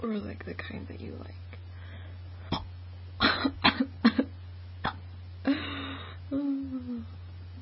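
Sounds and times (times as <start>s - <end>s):
speech: 0.0s - 1.5s
steady low hum: 0.0s - 7.6s
person choking on a hiccup: 2.5s - 4.2s, 4.8s - 5.0s
sharp coughs: 2.5s - 5.0s
person moaning: 5.5s - 7.1s.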